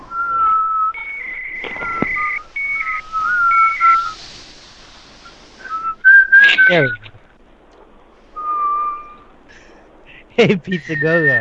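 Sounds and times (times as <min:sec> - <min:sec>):
people whistling together during a prank phone call: 0:00.0 - 0:04.2, 0:05.6 - 0:07.1, 0:08.4 - 0:09.3, 0:10.8 - 0:11.3
speech: 0:06.7 - 0:07.1, 0:10.4 - 0:11.3.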